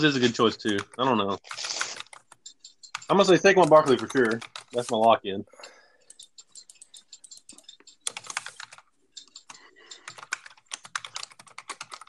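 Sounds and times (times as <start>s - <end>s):
speech: 0.0s - 1.8s, 3.1s - 5.8s
typing on a computer keyboard: 0.0s - 12.0s.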